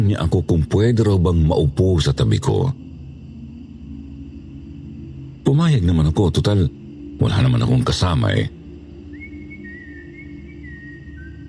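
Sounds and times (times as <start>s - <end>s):
speech: 0.0s - 2.9s, 5.4s - 8.6s
person whistling a short wavering tune at night: 9.1s - 11.4s.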